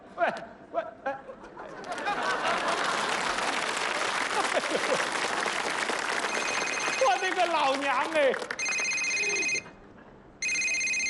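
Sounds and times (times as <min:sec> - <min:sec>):
laughter: 0:01.0 - 0:05.4
electronic telephone ringing: 0:06.3 - 0:07.3, 0:08.6 - 0:09.7, 0:10.4 - 0:11.0
speech: 0:07.7 - 0:08.6.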